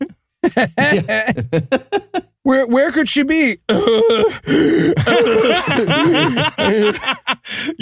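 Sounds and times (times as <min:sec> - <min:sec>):
laughter: 0:00.0 - 0:02.3, 0:03.8 - 0:07.8
speech: 0:00.6 - 0:07.8
voice imitating asthmatic panting wheeze: 0:03.7 - 0:05.1.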